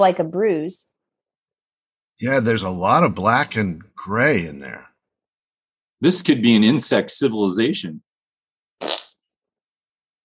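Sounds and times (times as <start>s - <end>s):
speech: 0.0s - 0.9s, 2.2s - 4.9s, 6.0s - 8.1s
fart noise: 8.8s - 9.3s.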